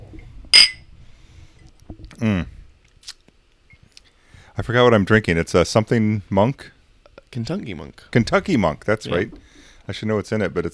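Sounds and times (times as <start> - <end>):
glasses clinking in a toast: 0.6 - 0.8
speech: 2.2 - 2.5, 4.7 - 10.7.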